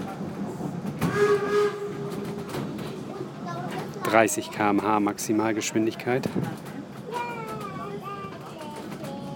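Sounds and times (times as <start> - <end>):
rumble and hiss of moving train with carriages partly 100 years old: 0.0 - 9.3
steam locomotive whistle: 1.1 - 2.4
speech: 4.1 - 6.7.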